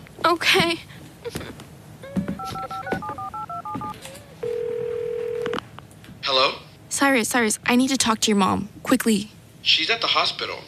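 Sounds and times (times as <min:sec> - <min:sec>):
speech: 0:00.3 - 0:01.6, 0:06.3 - 0:10.6
phone dialing tones: 0:02.3 - 0:05.6.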